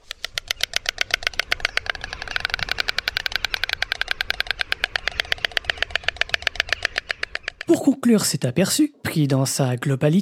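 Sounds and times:
white stork clattering its bill: 0.0s - 7.8s
speech: 7.7s - 10.1s.

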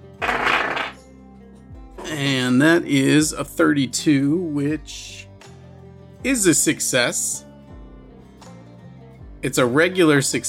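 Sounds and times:
metal dice rolling on a hard table: 0.1s - 1.0s
speech: 2.2s - 5.3s, 6.2s - 7.5s, 9.4s - 10.4s.

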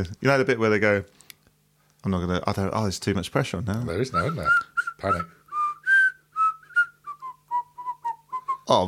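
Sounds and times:
speech: 0.0s - 1.2s, 2.0s - 5.4s, 8.7s - 8.8s
man whistling by drawing air inward: 4.2s - 8.7s.

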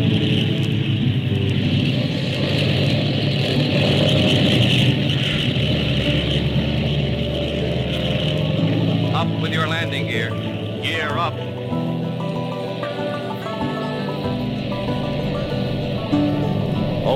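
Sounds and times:
airliner engines roaring at takeoff power: 0.0s - 17.1s.

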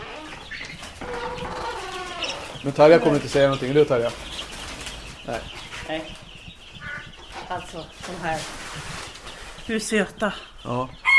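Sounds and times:
chickens clucking and chattering inside a henhouse in the morning: 0.0s - 11.1s
speech: 2.6s - 4.3s, 5.3s - 6.2s, 7.5s - 8.9s, 9.7s - 11.0s.

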